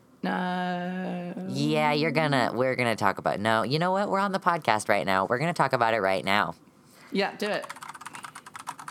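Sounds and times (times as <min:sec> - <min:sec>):
speech: 0:00.2 - 0:01.0, 0:01.6 - 0:07.8
computer keyboard typing: 0:07.6 - 0:08.8.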